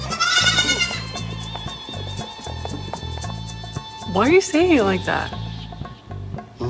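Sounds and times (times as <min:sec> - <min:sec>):
goats bleating: 0:00.0 - 0:01.4
speech: 0:04.1 - 0:05.4.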